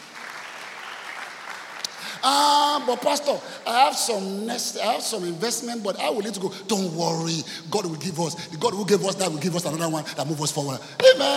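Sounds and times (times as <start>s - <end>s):
church congregation clapping hands: 0.0s - 3.4s
speech: 2.2s - 11.3s.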